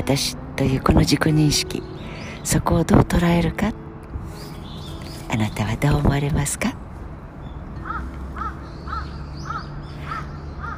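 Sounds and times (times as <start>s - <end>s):
speech: 0.0s - 3.8s, 5.3s - 6.8s
low rumble: 0.0s - 10.7s
crow cawing: 7.8s - 10.7s.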